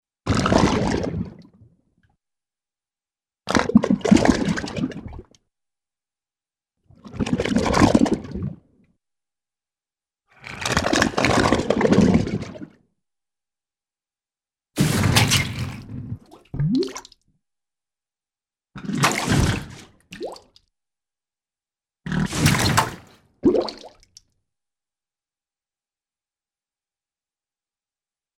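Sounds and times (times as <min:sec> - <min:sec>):
cartoon water bubbles draining and gurgling: 0:00.3 - 0:01.5, 0:03.5 - 0:05.3, 0:07.0 - 0:08.7, 0:10.6 - 0:12.8, 0:14.8 - 0:17.3, 0:18.8 - 0:20.6, 0:22.1 - 0:24.2.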